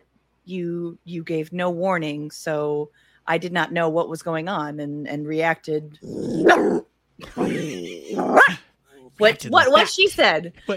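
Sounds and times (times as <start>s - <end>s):
speech: 0.5s - 8.6s, 9.2s - 10.7s
female dog growling: 6.0s - 6.8s, 7.4s - 8.5s
female dog barking: 8.2s - 8.6s.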